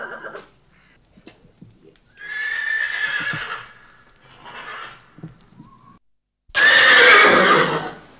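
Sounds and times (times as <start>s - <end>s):
horse whinnying: 2.2s - 5.9s, 6.5s - 8.0s.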